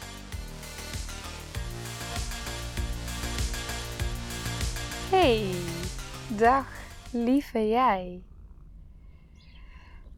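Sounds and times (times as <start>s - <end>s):
steady low rumble: 2.7s - 10.1s
speech: 5.1s - 5.7s, 6.4s - 8.3s
small birds singing softly outdoors: 6.5s - 10.1s.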